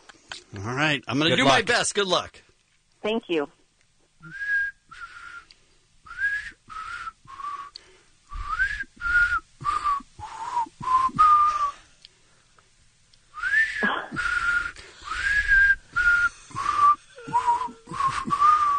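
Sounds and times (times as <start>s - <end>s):
speech: 0.5s - 3.6s, 4.2s - 4.4s
man whistling a pop melody: 4.2s - 5.5s, 6.1s - 11.8s, 13.4s - 18.7s.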